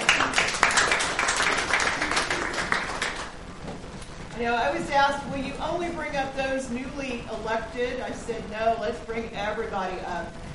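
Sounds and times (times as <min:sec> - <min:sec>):
crowd applauding: 0:00.0 - 0:03.4
speech: 0:04.4 - 0:10.4.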